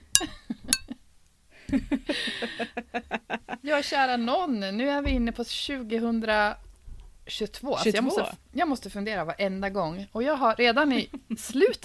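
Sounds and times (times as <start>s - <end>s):
glasses clinking in a New Year toast: 0.0s - 0.9s
speech: 1.7s - 2.9s, 3.6s - 6.6s, 7.3s - 11.8s.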